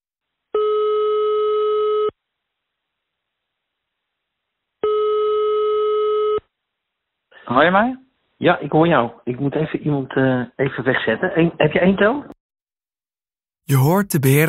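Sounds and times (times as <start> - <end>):
telephone call tone while phoning someone: 0.6 - 2.1, 4.8 - 6.4
speech: 7.5 - 12.4, 13.7 - 14.4.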